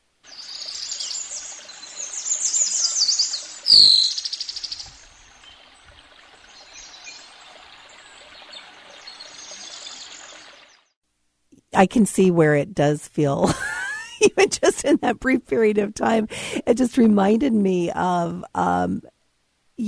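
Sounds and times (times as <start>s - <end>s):
steady wash of flowing water: 0.2s - 11.0s
bright high birdsong chirps and trills: 0.3s - 10.9s
speech: 3.7s - 4.2s, 11.8s - 13.7s, 14.3s - 19.2s.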